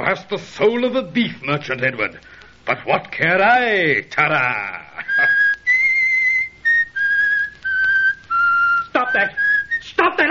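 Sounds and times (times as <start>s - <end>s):
speech: 0.0s - 5.4s, 9.2s - 10.2s
person whistling a short tune: 5.0s - 9.9s.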